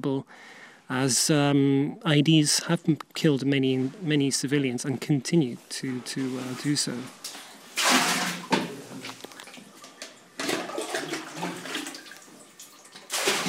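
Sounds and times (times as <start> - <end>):
speech: 0.0 - 7.9
water poured from bucket into barrel: 7.7 - 13.4.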